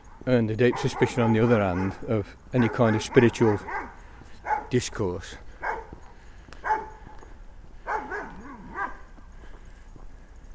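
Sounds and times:
speech: 0.2 - 4.0, 4.7 - 5.4
dog barking: 0.6 - 4.8, 5.6 - 6.0, 6.6 - 7.2, 7.8 - 9.1.

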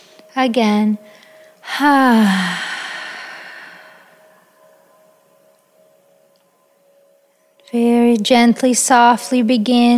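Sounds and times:
speech: 0.4 - 2.7, 7.7 - 9.9
deep breath let out as an audible sigh: 1.6 - 4.3.

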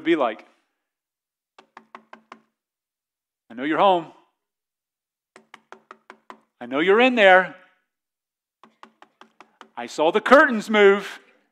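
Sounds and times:
speech: 0.0 - 0.6, 3.6 - 4.2, 6.6 - 7.6, 9.8 - 11.2
knocking on a door: 1.6 - 2.6, 5.4 - 6.6, 8.6 - 9.8.

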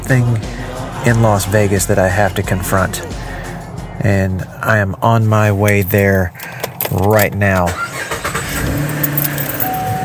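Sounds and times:
speech: 0.1 - 3.2, 4.0 - 7.8
car engine powering up: 7.4 - 10.0.

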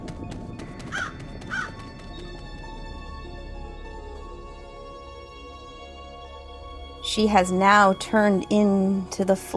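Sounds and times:
steady rustling: 0.0 - 2.8
crow cawing: 0.9 - 1.9
speech: 7.2 - 9.5.

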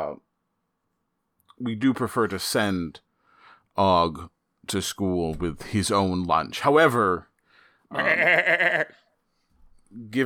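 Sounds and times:
speech: 0.0 - 0.3, 1.6 - 3.1, 3.8 - 7.3, 7.9 - 9.0, 9.9 - 10.2
large goat bleating: 7.9 - 9.0.

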